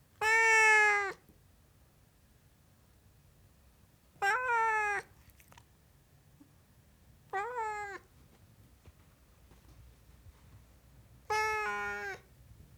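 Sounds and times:
Siamese cat meowing: 0:00.2 - 0:01.2, 0:04.2 - 0:05.1, 0:07.3 - 0:08.1, 0:11.3 - 0:12.3.

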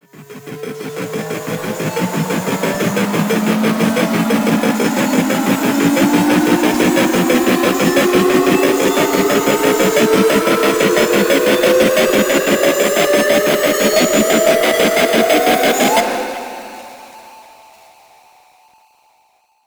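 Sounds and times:
trailer riser: 0:00.1 - 0:16.0.

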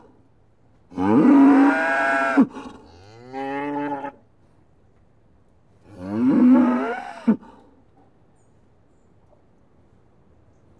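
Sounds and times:
several cows mooing in a yard: 0:01.0 - 0:04.2, 0:06.0 - 0:07.5.

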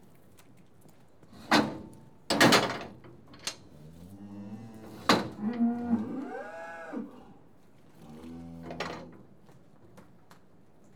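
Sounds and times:
cattle mooing in a yard: 0:04.1 - 0:07.3.

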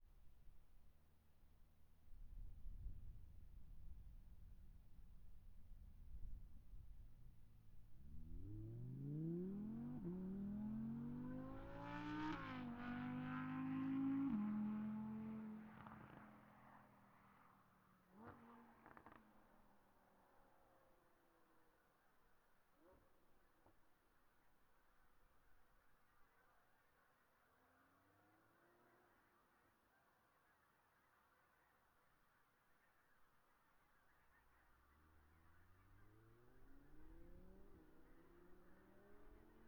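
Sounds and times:
distant 2017 Audi R8 driving fast, exterior: 0:03.0 - 0:24.5, 0:33.9 - 0:39.6.

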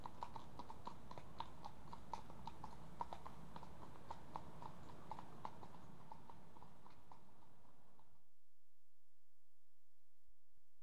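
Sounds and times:
two horses' hooves clopping at a walk: 0:00.0 - 0:08.1.

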